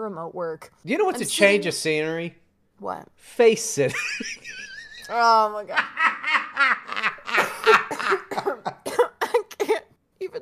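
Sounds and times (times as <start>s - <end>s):
speech: 0.0s - 6.8s
laughter: 3.9s - 5.1s, 5.7s - 8.9s
coughing: 6.4s - 9.9s.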